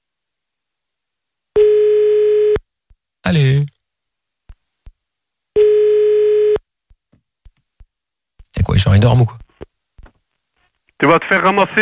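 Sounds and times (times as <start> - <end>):
telephone line tone during a callback: 1.6 - 2.6, 5.6 - 6.6
speech: 3.3 - 3.7, 9.0 - 9.4, 11.0 - 11.8.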